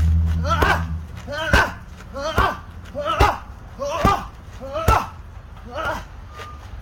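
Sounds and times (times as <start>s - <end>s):
boxer's punches hitting pads during pad work: 0.4s - 5.2s.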